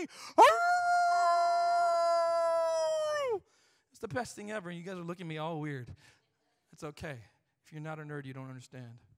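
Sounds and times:
speech: 0:00.0 - 0:00.5, 0:04.0 - 0:09.1
person imitating a wolf howl: 0:00.0 - 0:03.4.

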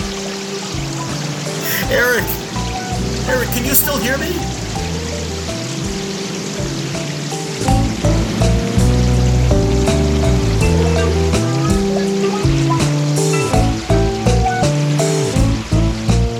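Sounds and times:
water rushing and pouring: 0:00.0 - 0:16.2
man calling out urgently: 0:01.6 - 0:02.5, 0:03.3 - 0:04.5
speech: 0:01.9 - 0:02.4, 0:03.3 - 0:04.6.

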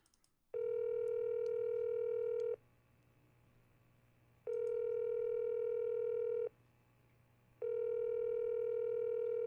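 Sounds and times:
phone line ringing tone through mixing board: 0:00.6 - 0:02.6, 0:04.5 - 0:06.5, 0:07.6 - 0:09.4.

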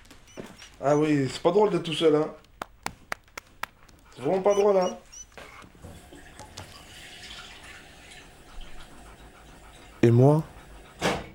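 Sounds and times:
speech: 0:00.8 - 0:02.4, 0:04.2 - 0:05.0, 0:10.1 - 0:10.5
water pouring into a dog's bowl: 0:06.0 - 0:08.4.

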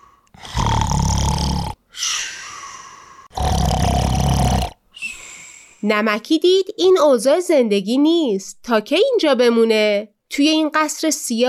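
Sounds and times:
loud deep snoring of a sleeping giant: 0:00.3 - 0:01.8, 0:03.3 - 0:04.8
speech: 0:05.8 - 0:11.4.

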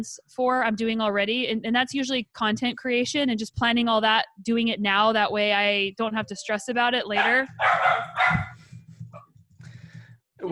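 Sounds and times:
speech: 0:00.0 - 0:08.5, 0:10.4 - 0:10.5
dog barking at a delivery truck: 0:07.2 - 0:08.6.

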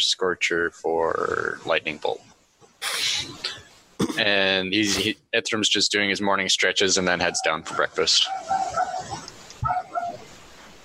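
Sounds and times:
speech: 0:00.0 - 0:02.3, 0:04.2 - 0:09.2
dogs barking in short yipping bursts: 0:07.2 - 0:10.8.

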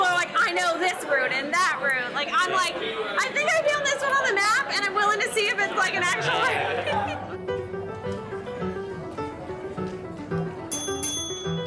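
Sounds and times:
murmur of many people talking in a crowded room: 0:00.0 - 0:11.2
speech: 0:00.6 - 0:07.3
laughter: 0:05.5 - 0:07.5
bright high bell rung to end speed dating round: 0:10.7 - 0:11.6.

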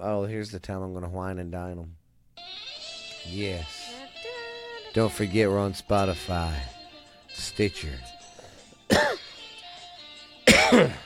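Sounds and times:
speech: 0:00.0 - 0:02.0, 0:03.2 - 0:03.8, 0:05.0 - 0:06.8, 0:07.4 - 0:08.1
person coughing: 0:08.9 - 0:09.3, 0:10.5 - 0:11.0.

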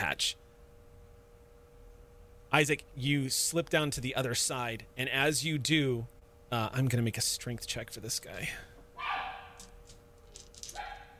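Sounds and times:
speech: 0:00.1 - 0:00.4, 0:02.5 - 0:08.7
person barking like a dog: 0:09.0 - 0:09.6, 0:10.7 - 0:11.1.

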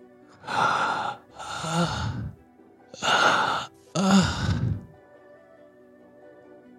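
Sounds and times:
person imitating heavy wispy pained breathing in a cave: 0:00.4 - 0:02.4, 0:03.0 - 0:04.9.

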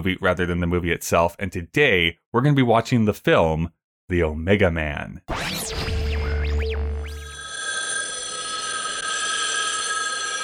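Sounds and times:
speech: 0:00.0 - 0:05.8
deep hum: 0:05.3 - 0:07.4
telephone bell ringing: 0:07.2 - 0:10.4.

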